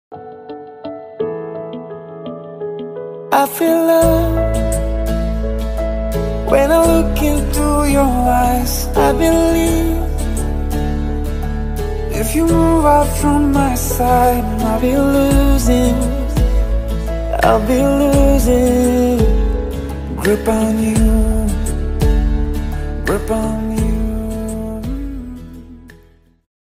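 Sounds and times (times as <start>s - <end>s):
English romantic ringtone melody: 0.1s - 25.9s.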